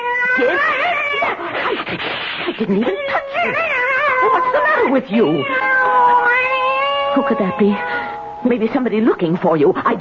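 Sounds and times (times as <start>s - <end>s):
cat yowling: 0.0s - 1.4s, 2.8s - 8.4s
speech: 0.4s - 3.6s, 4.9s - 5.7s, 7.2s - 9.9s.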